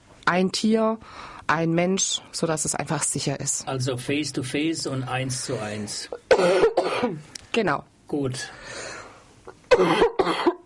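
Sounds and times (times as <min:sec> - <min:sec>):
speech: 0:00.3 - 0:08.9, 0:09.8 - 0:10.5
person coughing: 0:06.1 - 0:07.2, 0:09.7 - 0:10.6.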